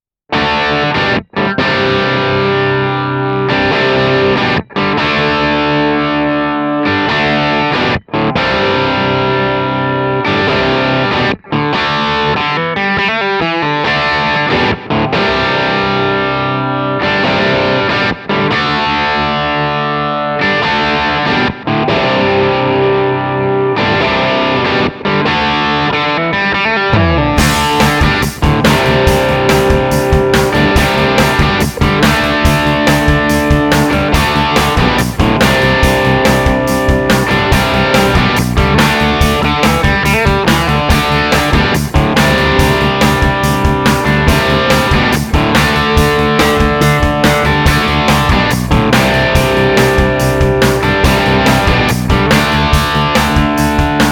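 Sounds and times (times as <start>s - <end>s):
modern 90s crunch guitar through Manley tube mic preamp: 0.3s - 54.1s
band playing: 27.0s - 54.1s.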